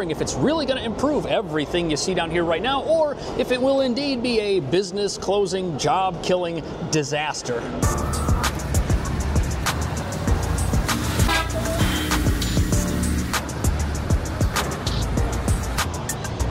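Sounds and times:
speech: 0.0 - 8.6
busy street traffic engines roaring: 0.0 - 16.4
car horn toots and honks: 11.1 - 12.4.

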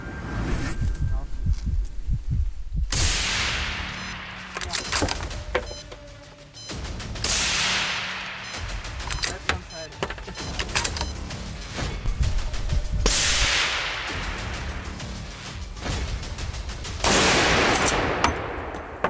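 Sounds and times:
rustling noise: 0.3 - 2.9
hunter's gunshots at wild boars: 2.9 - 5.8, 6.6 - 19.0.

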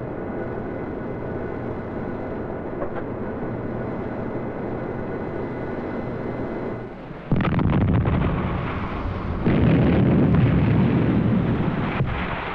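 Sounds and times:
heavy roaring rumble after missile blast: 0.0 - 12.5
missile striking a destroyer in a live test: 7.3 - 12.5.

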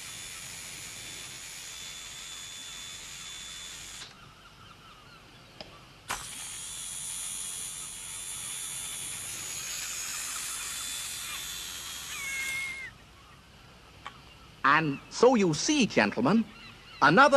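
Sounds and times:
hose reel ratcheting: 0.0 - 4.2, 6.1 - 12.9
speech: 14.7 - 17.3.

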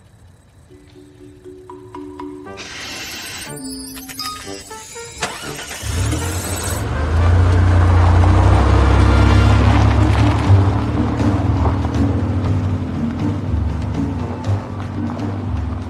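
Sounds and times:
car electronic chimes: 0.7 - 6.9
car starter cranking: 3.0 - 7.7
car engine settling into a loud steady low rumble: 5.2 - 15.8.

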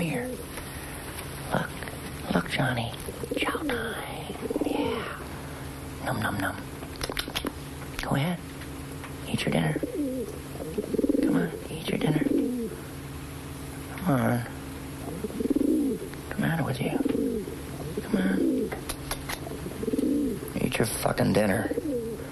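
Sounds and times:
faint hum: 0.0 - 22.2
speech: 2.5 - 4.2, 6.1 - 6.7, 9.4 - 9.9
pet bird cooing in low throaty bursts at feeding time: 3.1 - 5.4, 9.7 - 12.9, 15.0 - 16.1, 16.8 - 18.8, 19.4 - 20.5, 21.5 - 22.2.

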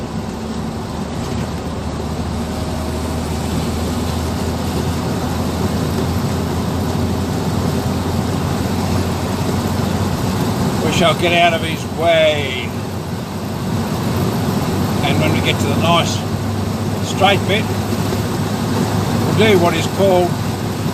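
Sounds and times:
big truck passing on road: 0.0 - 20.9
speech: 11.0 - 12.6, 15.2 - 16.3, 17.1 - 17.8, 19.4 - 20.4.

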